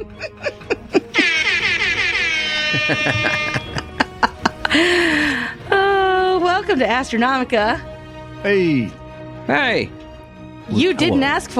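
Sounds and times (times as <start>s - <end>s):
snickering laughter: 0.0s - 5.1s
air horn blast: 1.2s - 3.8s
speech: 2.9s - 3.6s, 6.6s - 10.0s, 10.7s - 11.5s.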